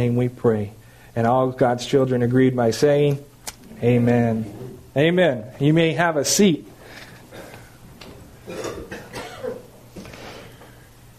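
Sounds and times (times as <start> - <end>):
speech: 0.0 - 6.7
low steady room hum: 0.0 - 11.1
short rough coughs: 8.5 - 9.7.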